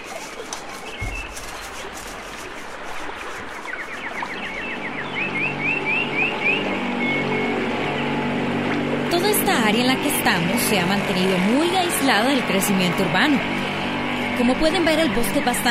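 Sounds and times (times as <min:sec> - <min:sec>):
birds chirping and trilling: 0:00.0 - 0:15.7
motorboat engine droning on a river: 0:00.0 - 0:15.7
rushing river water: 0:00.0 - 0:15.7
speech: 0:09.7 - 0:13.6, 0:14.4 - 0:15.7.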